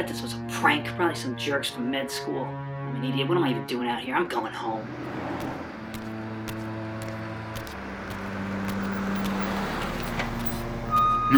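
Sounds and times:
speech: 0.0s - 5.5s
car engine humming on a cold dark street: 4.8s - 11.3s
faint crackling and clicks: 5.4s - 11.3s.

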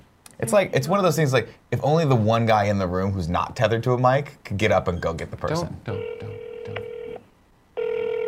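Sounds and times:
speech: 0.4s - 6.9s
telephone ringing while calling someone: 5.9s - 7.2s, 7.8s - 8.2s.

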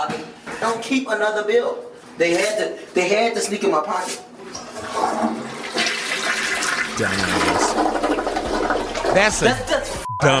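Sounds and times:
speech: 0.0s - 5.6s, 7.0s - 8.2s, 9.2s - 10.3s
toilet flushing: 4.5s - 10.0s.

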